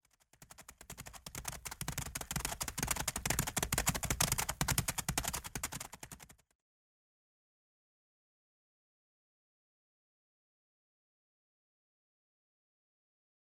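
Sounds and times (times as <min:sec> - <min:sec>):
horses: 0:00.2 - 0:06.4.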